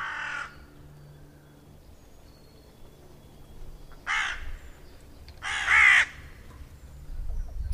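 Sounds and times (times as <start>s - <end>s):
hooded crow cawing: 0.0s - 0.5s, 4.0s - 4.5s, 5.4s - 6.2s.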